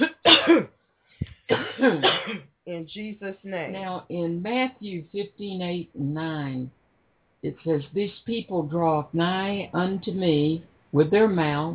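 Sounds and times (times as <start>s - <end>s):
crowd at a religious service coughing on request: 1.5s - 2.4s
speech: 1.8s - 6.8s, 7.4s - 11.7s.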